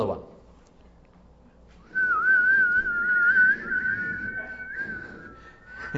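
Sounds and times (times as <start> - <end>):
church audience whistling one long note: 1.9 - 5.9.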